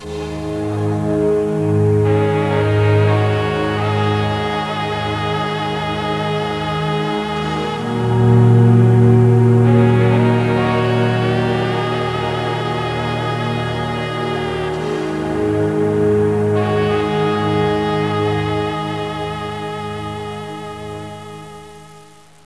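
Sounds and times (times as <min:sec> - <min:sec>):
romantic 8-bit chiptune music: 0:00.0 - 0:21.9.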